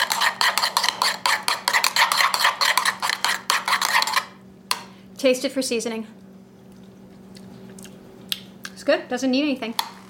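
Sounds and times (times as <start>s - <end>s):
spoon stirring salt and garlic into a yogurt mixture in a bowl: 0.0s - 4.8s
speech: 5.2s - 6.3s, 8.8s - 9.9s.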